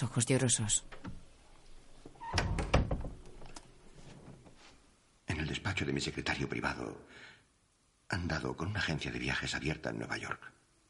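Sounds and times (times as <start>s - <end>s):
speech: 0.0s - 1.1s, 5.8s - 7.4s, 8.1s - 10.6s
bedroom door swinging shut with latch rattle: 0.8s - 1.3s, 2.0s - 4.4s.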